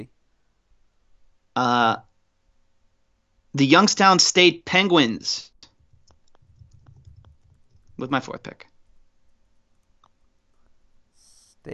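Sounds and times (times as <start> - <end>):
speech: 1.6 - 2.1, 3.6 - 5.5, 8.0 - 8.7
soft scattered keyboard clicks: 5.6 - 8.2.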